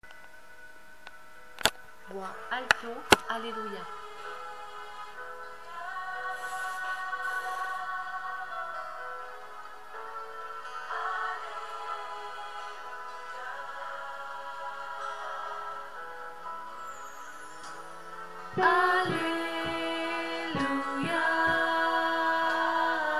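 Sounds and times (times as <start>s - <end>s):
alto voice singing alleluia: 3.3s - 9.8s, 10.6s - 16.1s, 18.6s - 23.1s.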